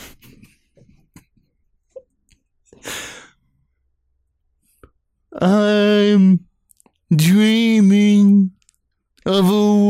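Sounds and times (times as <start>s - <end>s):
short airy inhales in a breathing exercise before singing: 2.7s - 3.4s
speech: 5.4s - 6.5s, 7.1s - 8.2s, 9.3s - 9.7s.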